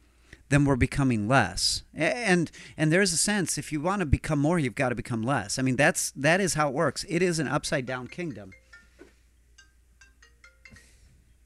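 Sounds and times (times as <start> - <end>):
speech: 0.5 - 8.6
phone ringtone chirping bright electronic notes: 7.8 - 11.2.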